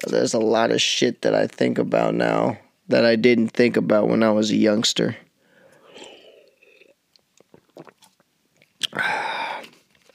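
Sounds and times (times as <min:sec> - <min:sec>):
speech: 0:00.0 - 0:05.2
quiet wet mouth clicks: 0:05.8 - 0:09.8
slurping sip of juice: 0:05.8 - 0:10.1.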